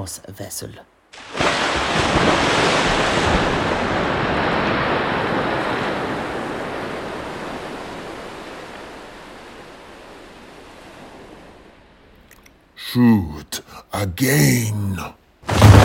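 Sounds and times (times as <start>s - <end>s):
speech: 0.0s - 0.9s, 12.9s - 15.2s
heavy sea surf crashing against rocks below cliffs: 1.2s - 11.6s, 15.4s - 15.8s.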